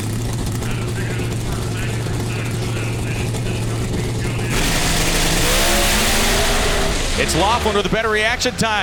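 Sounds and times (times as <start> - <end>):
Pro Stock drag racing car engines idling and revving in pre-stage: 0.0 - 8.8
announcer speaking: 0.4 - 6.0, 7.0 - 8.8
speech: 7.3 - 8.8.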